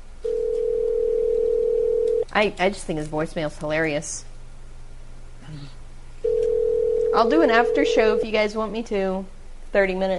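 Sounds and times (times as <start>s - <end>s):
telephone dial tone before a call is placed: 0.2s - 2.2s, 6.2s - 7.3s
speech: 2.4s - 4.3s, 7.2s - 10.1s.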